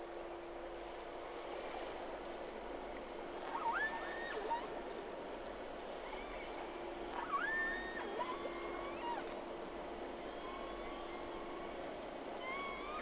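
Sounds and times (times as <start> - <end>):
steady low hum: 0.0 - 13.0
two whales whistling: 3.4 - 4.8, 6.0 - 9.4, 10.2 - 13.0.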